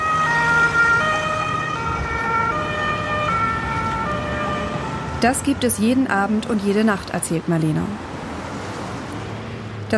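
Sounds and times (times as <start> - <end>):
emergency vehicle siren wailing: 0.0 - 6.4
road traffic rumble: 0.0 - 9.9
speech: 5.2 - 8.1.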